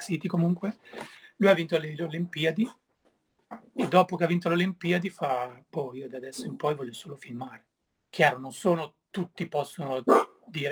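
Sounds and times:
speech: 0.0s - 2.8s, 3.5s - 10.7s
dog barking: 3.8s - 4.0s, 10.1s - 10.4s.

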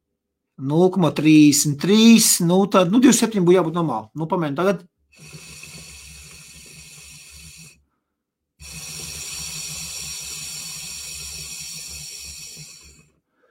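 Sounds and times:
speech: 0.6s - 5.4s
water bubbling in an electronic water pipe: 5.2s - 7.8s, 8.6s - 13.1s.

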